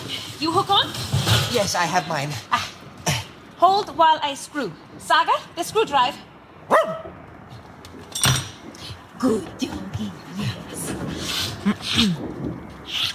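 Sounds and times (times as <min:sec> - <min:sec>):
speech: 0:00.4 - 0:02.7, 0:03.6 - 0:07.2, 0:09.2 - 0:10.9, 0:11.6 - 0:13.1
dog barking and yelping: 0:06.7 - 0:07.1.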